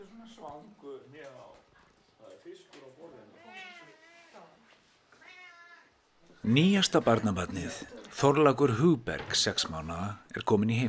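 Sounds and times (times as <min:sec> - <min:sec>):
speech: 0:00.3 - 0:04.6, 0:06.3 - 0:10.8
cat meowing at home: 0:03.3 - 0:04.5, 0:05.1 - 0:06.0.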